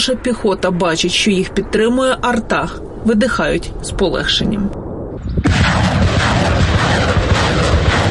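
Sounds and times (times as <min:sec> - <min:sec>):
speech: 0:00.0 - 0:04.8
Grad multiple rocket launcher firing rockets: 0:04.7 - 0:08.0.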